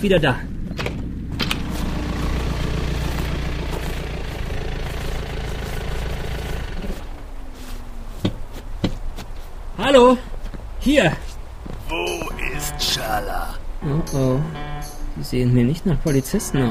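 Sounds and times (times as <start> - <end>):
speech: 0.0 - 0.6, 9.8 - 11.3, 12.6 - 16.6
car engine idling: 0.6 - 7.1.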